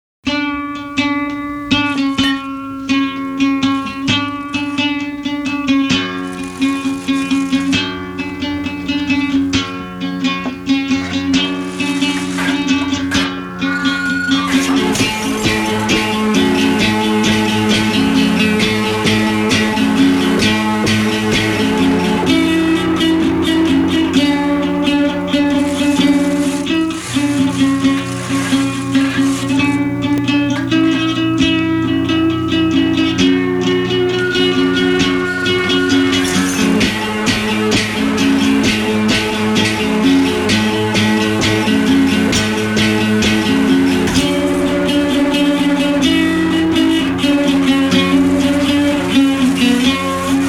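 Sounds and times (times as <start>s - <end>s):
acoustic guitar played with a razor blade: 0.3s - 50.4s.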